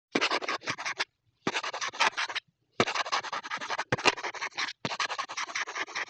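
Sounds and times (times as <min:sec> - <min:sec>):
vintage cartoon pen writing foley: 0:00.1 - 0:06.0.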